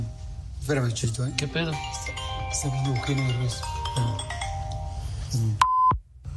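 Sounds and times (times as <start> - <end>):
low noise: 0.0 - 6.3
speech: 0.7 - 4.3, 5.3 - 5.7
mobile phone ringtone: 1.2 - 5.5.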